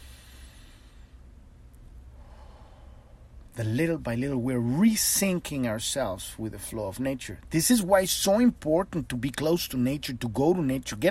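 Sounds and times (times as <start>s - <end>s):
slow deep breathing during a guided relaxation exercise: 0.0s - 1.3s, 2.1s - 3.4s
speech: 3.6s - 11.0s.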